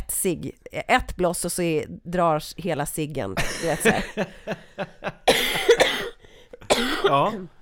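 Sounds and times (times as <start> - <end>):
speech: 0.2 - 5.2, 7.0 - 7.6
ill person coughing: 5.2 - 7.5.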